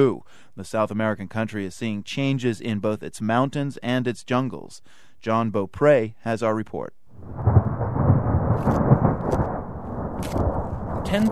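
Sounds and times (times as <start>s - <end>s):
speech: 0.0s - 7.5s
deep rolling thunder: 7.1s - 11.2s
light rain patter: 7.4s - 11.2s.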